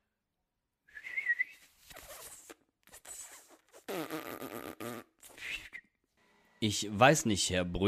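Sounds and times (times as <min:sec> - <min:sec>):
person whistling a wavering tone: 0:00.9 - 0:01.8, 0:05.3 - 0:06.0
breathy hisses and raspy sputtering blowing noises: 0:01.0 - 0:05.9
speech: 0:06.6 - 0:07.8.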